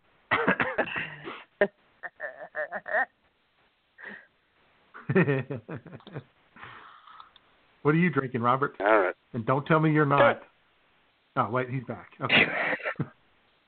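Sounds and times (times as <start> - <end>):
man having a coughing fit: 0.3 - 3.1, 12.3 - 13.1
speech: 5.2 - 6.4, 7.8 - 10.5, 11.4 - 13.1.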